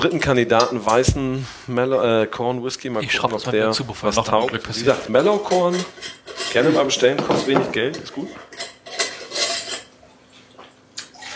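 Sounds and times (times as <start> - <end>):
speech: 0.0 - 8.7
glass clinking: 5.7 - 9.9
water poured into a glass: 11.1 - 11.3.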